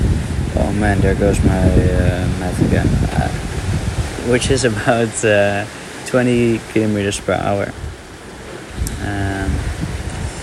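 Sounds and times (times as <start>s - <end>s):
strong gusting wind on a sailing boat: 0.0s - 10.4s
speech: 0.7s - 3.6s, 4.2s - 7.8s.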